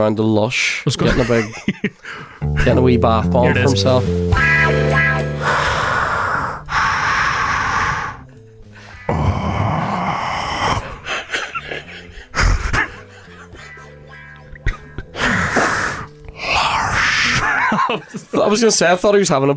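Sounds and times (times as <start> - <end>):
speech: 0.0 - 4.6, 18.5 - 19.5
laughter: 1.0 - 2.4, 11.0 - 15.4, 17.2 - 18.6
voice imitating slow heavy masked breathing: 5.3 - 17.4.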